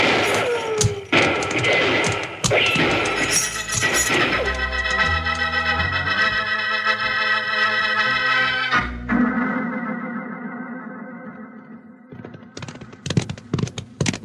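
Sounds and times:
gunfire in a Western radio drama: 0.0 - 4.6
dramatic music in a Western radio drama: 1.9 - 10.8.

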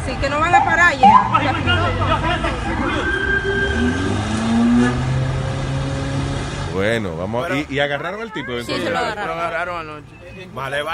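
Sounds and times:
speech: 0.1 - 3.2, 6.8 - 10.9
car driving fast with engine revving and accelerating hard: 0.2 - 6.8.

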